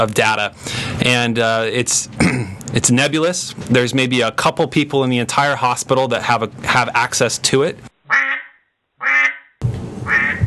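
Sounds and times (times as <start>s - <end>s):
speech: 0.0s - 7.9s
duck quack sound effect used as an audio cue: 8.1s - 9.5s, 10.1s - 10.4s.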